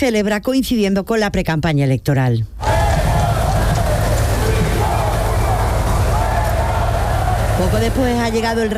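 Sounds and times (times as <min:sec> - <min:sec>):
speech: 0:00.0 - 0:02.6, 0:07.6 - 0:08.7
large crowd at a National Day parade whistling and booing: 0:02.6 - 0:08.7.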